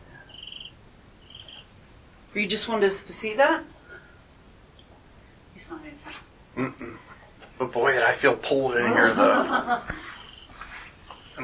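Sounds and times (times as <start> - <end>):
low hum: 0.0 - 11.4
cricket chirping: 0.2 - 1.7, 10.2 - 11.4
speech: 2.3 - 3.8, 5.6 - 10.1
laughter: 8.9 - 10.1.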